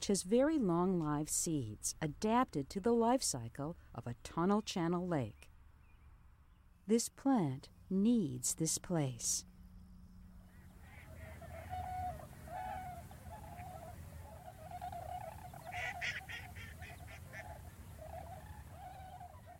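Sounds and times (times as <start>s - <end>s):
speech: 0.0s - 5.5s, 6.9s - 9.5s
flock of geese honking at a prairie pond: 10.4s - 19.5s.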